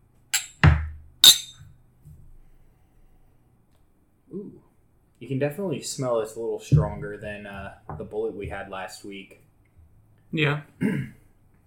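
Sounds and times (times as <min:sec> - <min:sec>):
glasses clinking in a toast during a bourbon tasting: 0:00.4 - 0:00.6, 0:01.2 - 0:01.5
speech: 0:05.2 - 0:09.5, 0:10.3 - 0:11.2.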